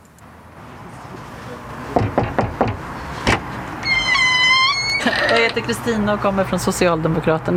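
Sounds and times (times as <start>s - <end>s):
firm knocks on a front door: 2.0s - 3.4s
front door squealing as it is opened: 3.8s - 5.7s
speech: 5.0s - 7.5s.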